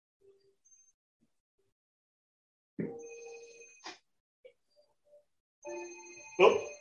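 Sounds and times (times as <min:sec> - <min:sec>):
telephone ringing with electronic tone: 0:02.9 - 0:03.9, 0:05.6 - 0:06.8.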